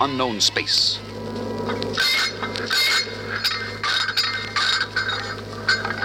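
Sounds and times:
constant low mechanical hum: 0.0 - 6.0
turned-off metal robots clinking and clanking aboard a space pirate ship: 2.0 - 6.0.

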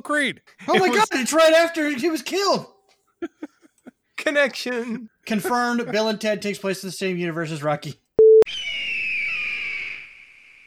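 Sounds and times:
speech: 0.0 - 3.5, 4.2 - 8.0
laughter: 0.6 - 1.1, 3.2 - 6.2
short electronic beep: 8.2 - 8.4
stock Hollywood eagle screech: 8.5 - 10.6.

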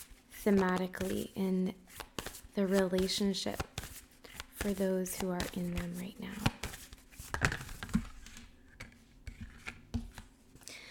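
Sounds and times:
tarot cards being shuffled by hand: 0.0 - 10.4
speech: 0.4 - 3.7, 4.6 - 6.5.

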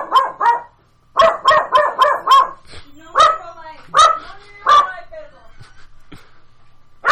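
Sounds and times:
dog barking excitedly: 0.0 - 5.1.

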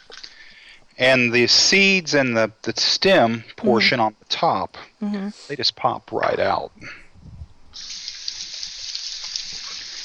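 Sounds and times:
speech: 1.0 - 7.0
tap water rinsing a halved vegetable: 7.8 - 10.0.

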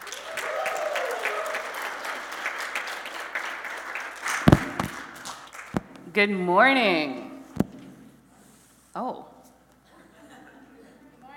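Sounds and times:
audience applauding and cheering a rowdy welcome: 0.0 - 6.0
sharp loud thump: 4.5 - 5.1
speech: 6.2 - 7.3, 9.0 - 9.3
laughter: 9.8 - 11.2.

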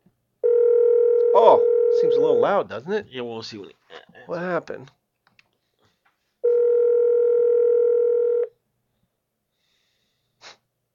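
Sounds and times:
telephone ring tone on a call being placed: 0.4 - 2.5, 6.4 - 8.5
speech: 1.4 - 5.0
soft sniff: 9.6 - 10.7.

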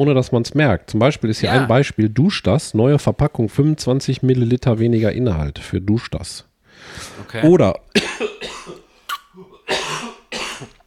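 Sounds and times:
speech: 0.0 - 8.8
person coughing: 1.4 - 1.7, 8.0 - 10.8.

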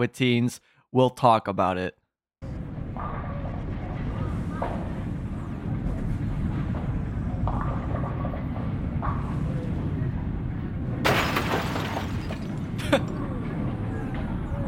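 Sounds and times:
speech: 0.0 - 2.0
steady low rumble: 2.4 - 14.6
faint voices: 2.8 - 10.9, 13.0 - 14.6
frozen body falling over and shattering with a bright brittle crash: 11.0 - 12.7.

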